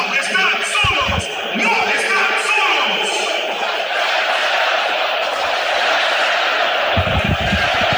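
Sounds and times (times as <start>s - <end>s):
large stadium crowd chanting in unison: 0.0s - 7.9s
laughter: 0.0s - 7.9s
low thumps: 0.8s - 1.2s, 7.0s - 7.9s.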